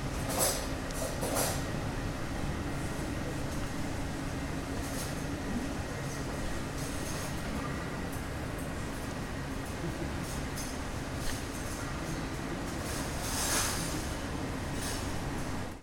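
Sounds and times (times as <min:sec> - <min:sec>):
inn kitchen ambience: 0:00.1 - 0:15.7.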